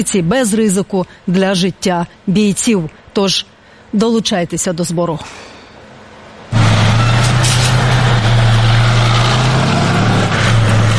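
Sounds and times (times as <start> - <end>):
speech: 0.0 - 5.5
Soviet T-72 tank engine rumbling as it drives: 5.8 - 10.9.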